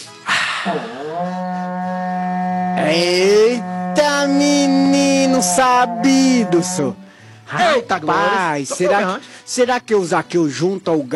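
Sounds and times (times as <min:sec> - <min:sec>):
speech: 0:00.6 - 0:01.6, 0:02.8 - 0:04.4, 0:05.4 - 0:11.1
berrante cattle horn being blown: 0:00.7 - 0:07.1.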